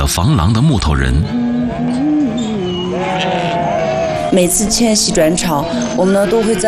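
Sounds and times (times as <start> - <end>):
speech: 0.0 - 3.7, 4.3 - 6.6
flock of western Tibetan white sheep bleating on grassland pasture: 1.6 - 6.6.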